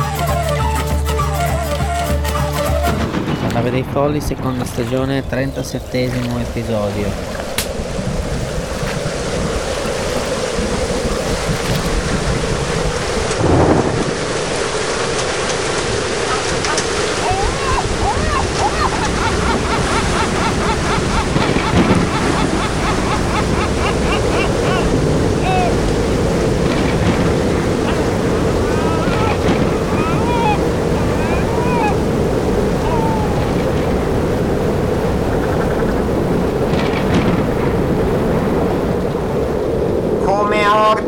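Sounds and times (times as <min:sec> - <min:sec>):
rough sea: 0:00.0 - 0:41.0
waves crashing: 0:00.0 - 0:41.0
wind: 0:00.0 - 0:41.0
speech: 0:03.6 - 0:07.4
laughter: 0:16.3 - 0:25.9, 0:27.5 - 0:33.8
faint high cries: 0:17.2 - 0:19.0, 0:28.7 - 0:32.0, 0:32.7 - 0:33.6.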